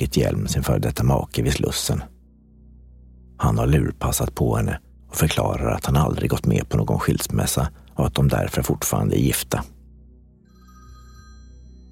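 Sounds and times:
speech: 0.0 - 2.2, 3.4 - 9.7
telephone bell ringing in a continuous trill: 10.4 - 11.9.

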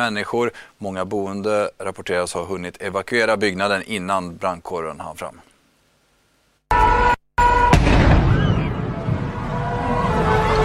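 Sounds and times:
speech: 0.0 - 5.5
large explosion in a burning building in Paris booming: 7.7 - 10.5.

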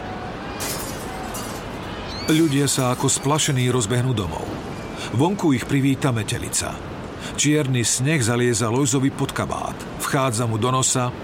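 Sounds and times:
tinkling glass shards: 0.6 - 3.4
church window glass shattering as wind bursts windows open: 0.6 - 3.7
speech: 2.3 - 11.2.

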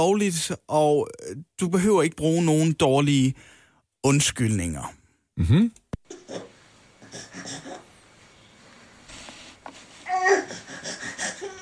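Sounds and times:
speech: 0.0 - 6.5
person imitating a crying baby: 10.0 - 11.6.

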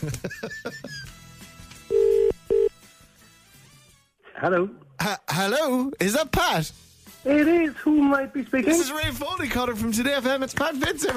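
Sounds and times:
speech: 0.0 - 0.5, 4.4 - 11.1
laughter: 0.0 - 1.2
ringback tone of an outgoing phone call: 1.9 - 2.7.

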